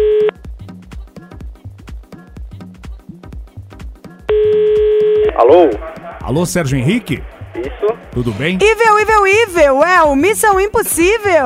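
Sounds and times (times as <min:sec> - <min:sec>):
telephone ringing tone as a call is placed: 0:00.0 - 0:00.4, 0:04.3 - 0:05.5
rhythmic music with a thumping bass beat: 0:00.4 - 0:05.0, 0:07.2 - 0:11.4
speech: 0:05.4 - 0:11.4.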